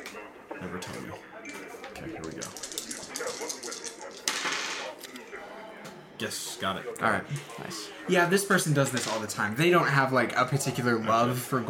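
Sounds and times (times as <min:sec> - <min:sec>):
speech: 0:00.6 - 0:01.3, 0:02.0 - 0:02.7, 0:06.2 - 0:11.6
dice tumbling across a surface: 0:02.2 - 0:04.8.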